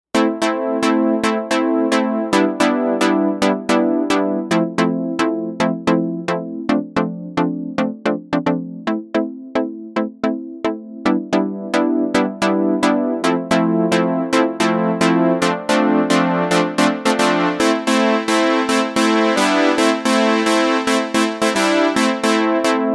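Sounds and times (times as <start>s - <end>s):
trance pluck synth: 0.2s - 22.9s.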